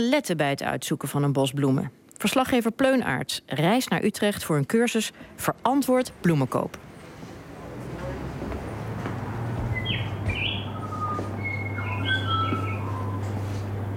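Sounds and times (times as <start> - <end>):
speech: 0.0 - 6.9
steady low hum: 4.6 - 13.9
bird chirping and whistling at a flower shop entrance: 9.7 - 13.4.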